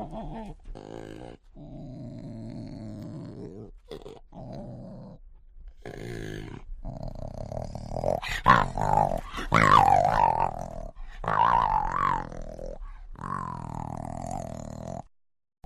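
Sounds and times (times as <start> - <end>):
jaguar cub grunting, snorting and wailing: 0.0 - 5.2, 5.8 - 15.1.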